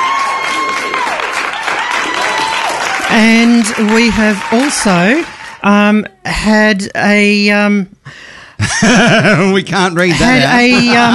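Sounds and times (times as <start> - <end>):
dense steady applause: 0.0 - 5.6
speech: 3.2 - 11.1
laughter: 8.6 - 11.1.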